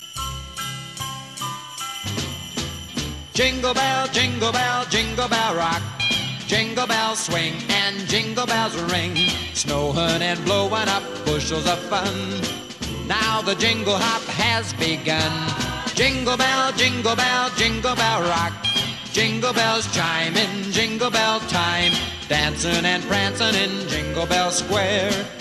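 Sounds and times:
bell rock: 0.0 - 25.3.

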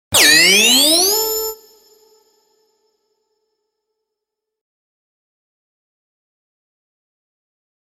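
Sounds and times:
buzzer tone: 0.2 - 2.2.

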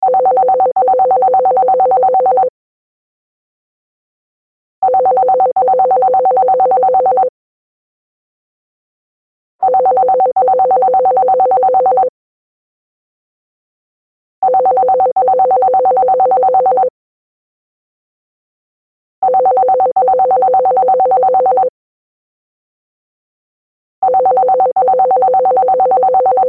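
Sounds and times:
landline phone ringing: 0.0 - 2.5, 4.8 - 7.3, 9.6 - 12.1, 14.4 - 16.9, 19.2 - 21.7, 24.0 - 26.4.

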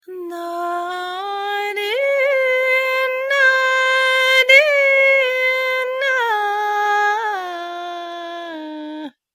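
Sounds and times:
female vocalist singing: 0.0 - 9.2.

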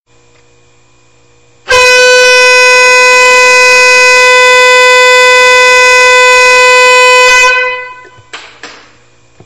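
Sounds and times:
train alarm: 1.7 - 8.3.

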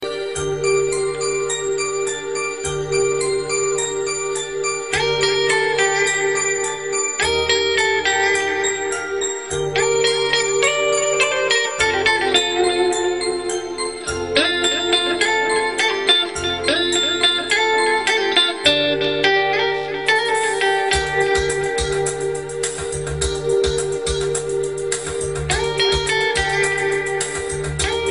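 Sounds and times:
romantic guitar tune: 0.0 - 28.0.

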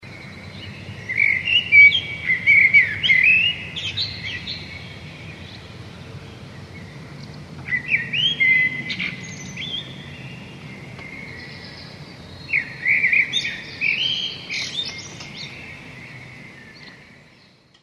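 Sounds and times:
morning birds singing: 0.0 - 17.8.

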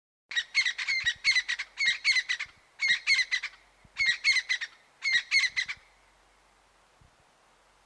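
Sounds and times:
crested francolin giving harsh scratchy rattling calls: 0.3 - 6.0.

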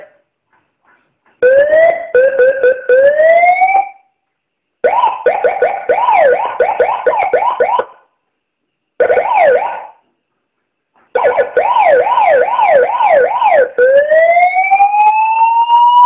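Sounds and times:
police siren: 1.4 - 4.1, 4.8 - 8.1, 9.0 - 10.0, 11.2 - 16.0.

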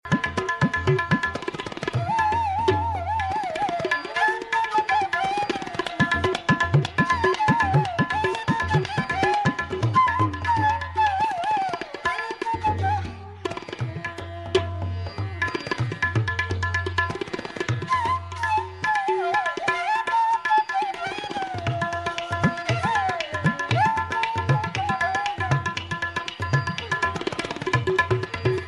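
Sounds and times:
bansuri flute: 0.0 - 28.6
tabla drums: 0.0 - 28.6.

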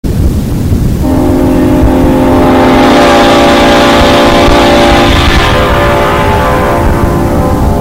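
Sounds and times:
Leslie S5A rotating speaker horn: 1.0 - 7.8.

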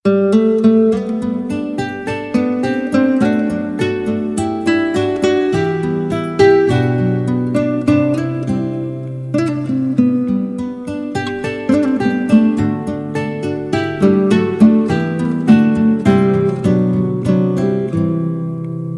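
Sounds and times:
guitar ringtone: 0.1 - 18.9.

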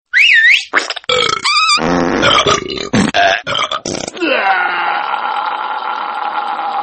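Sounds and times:
farting: 0.8 - 3.2
burping: 1.1 - 6.8.

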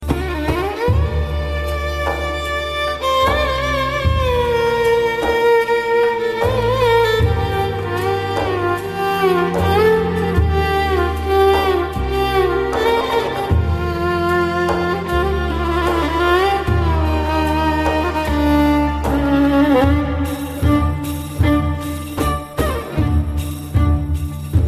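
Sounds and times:
Arabic violin playing: 0.0 - 24.6.

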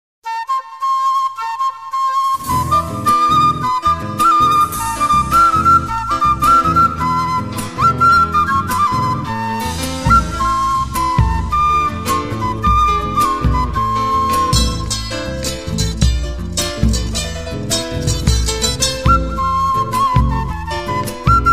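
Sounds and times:
flute: 0.2 - 21.5.

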